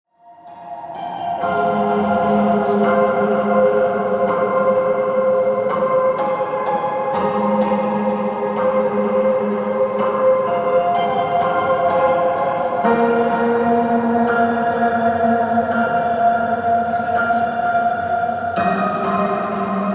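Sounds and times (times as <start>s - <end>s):
prepared piano effects: 0.2s - 19.9s.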